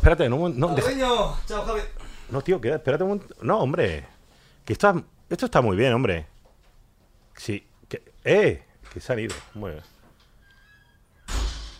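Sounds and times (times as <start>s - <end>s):
speech: 0.0s - 4.1s, 4.7s - 6.3s, 7.4s - 9.9s
heavy door shutting as people leave: 11.2s - 11.7s.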